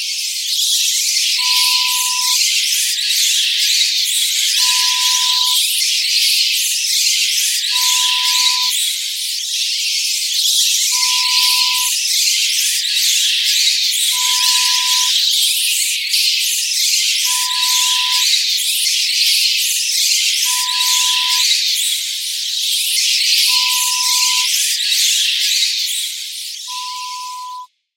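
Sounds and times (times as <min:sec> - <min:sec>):
bats: 0:00.2 - 0:22.0, 0:22.9 - 0:27.7.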